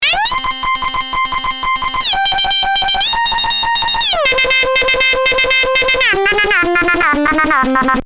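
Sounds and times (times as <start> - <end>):
lead synth riff: 0.0 - 8.0.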